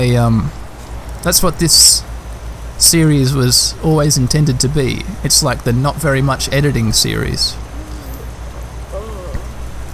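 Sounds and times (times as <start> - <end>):
speech: 0.0 - 0.6, 1.2 - 2.1, 2.8 - 7.6
steady rain: 0.0 - 9.9
faint indistinct human voice or murmur: 7.7 - 9.6.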